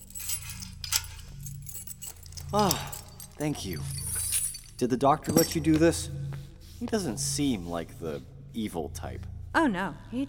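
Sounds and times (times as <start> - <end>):
metal shackles on the wrists being unlocked: 0.0 - 6.1
speech: 2.5 - 4.0, 4.8 - 6.2, 6.8 - 10.2.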